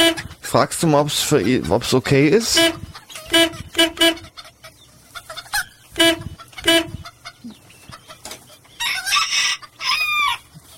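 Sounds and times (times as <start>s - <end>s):
chicken clucking and squawking: 0.0s - 10.7s
speech: 0.5s - 3.6s
chicken rising crow: 8.8s - 10.5s.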